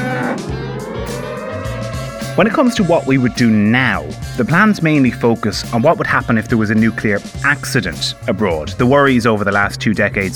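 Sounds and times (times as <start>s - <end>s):
cow mooing: 0.0s - 2.6s
speech: 2.4s - 10.3s.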